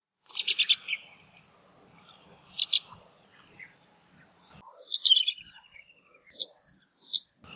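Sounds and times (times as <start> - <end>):
pipit calls in Ipoh Perak Malaysia: 0.3 - 1.2, 2.4 - 3.0, 4.7 - 7.5.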